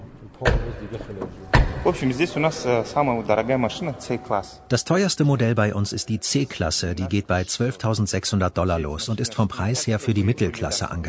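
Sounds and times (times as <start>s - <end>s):
car doors slamming in a showroom: 0.4s - 2.4s
speech: 0.4s - 11.0s.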